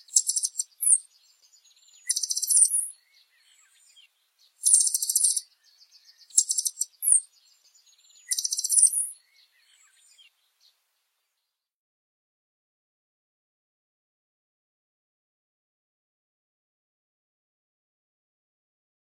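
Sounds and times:
Blue dacnis song: 0:00.0 - 0:11.8.

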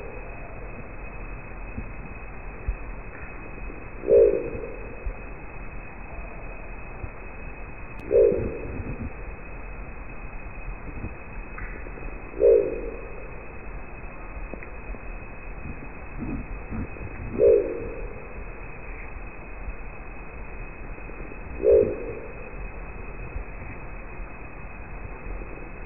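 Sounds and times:
steady rushing background noise: 0:00.0 - 0:25.8
crested owl giving a deep guttural growl: 0:03.9 - 0:05.1, 0:08.0 - 0:09.2, 0:12.3 - 0:13.4, 0:15.7 - 0:18.4, 0:21.4 - 0:22.6.

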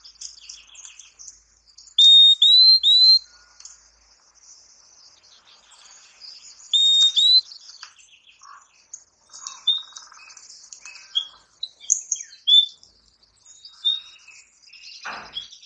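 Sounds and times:
purple-throated euphonia whistling clear rising high notes: 0:02.0 - 0:03.2, 0:06.8 - 0:07.4.

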